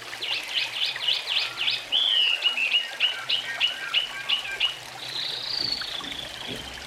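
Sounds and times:
gentle trickling noise: 0.0s - 6.8s
Oriental magpie-robin giving short chirping notes and a thin whistle: 1.3s - 6.4s.

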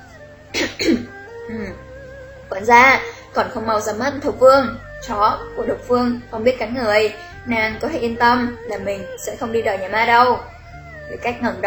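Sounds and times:
woman giving a dry cough: 0.6s - 1.8s
speech: 0.8s - 1.9s, 2.5s - 10.5s, 11.1s - 11.6s.

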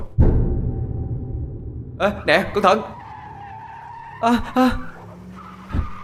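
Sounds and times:
low dull thump: 0.0s - 2.0s
speech: 2.0s - 3.0s, 4.2s - 4.9s
truck tires skidding while braking hard: 2.0s - 6.0s.

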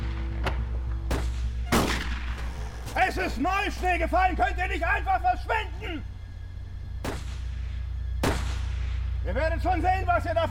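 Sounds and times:
low hum: 0.0s - 10.4s
rifle shots: 1.1s - 3.0s, 7.0s - 9.1s
speech: 3.1s - 6.1s, 9.2s - 10.4s.

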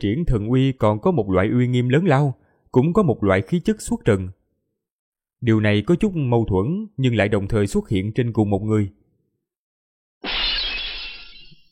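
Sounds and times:
speech: 0.0s - 4.4s, 5.4s - 9.0s
precious painted vase shattering into pieces: 10.2s - 11.7s
bright tinkling vase fragments: 10.3s - 11.7s.

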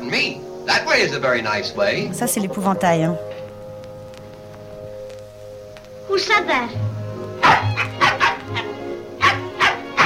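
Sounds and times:
speech: 0.1s - 3.4s, 6.1s - 7.0s
small dog barking in sharp high yaps: 7.4s - 10.0s.

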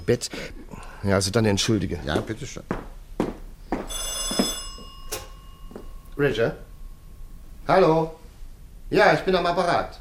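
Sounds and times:
steady low hum: 0.0s - 9.9s
speech: 0.1s - 2.8s, 6.2s - 6.7s, 7.7s - 8.2s, 8.9s - 9.9s
telephone bell ringing at home: 3.8s - 7.2s.

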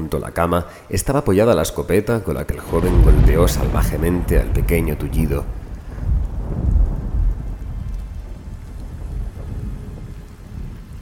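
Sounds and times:
speech: 0.1s - 5.6s
thunder rumbling: 2.5s - 11.0s
rain beating hard on the window of a small room: 2.6s - 11.0s.

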